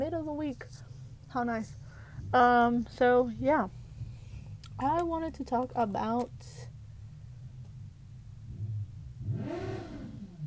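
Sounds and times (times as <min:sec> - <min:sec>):
speech: 0:00.6 - 0:03.8, 0:04.8 - 0:06.7
motorcycle engine revving outside: 0:08.4 - 0:10.4.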